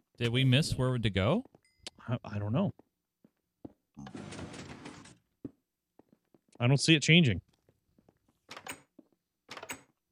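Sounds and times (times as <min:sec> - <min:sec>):
speech: 0:00.2 - 0:02.8, 0:06.6 - 0:07.5
trap door creaking and scraping open: 0:04.0 - 0:05.2.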